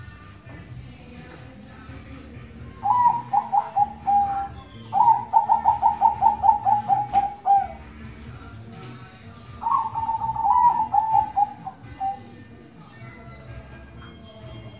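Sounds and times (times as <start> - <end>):
Zebra dove song of rapid pulsed coos: 2.2 - 13.5.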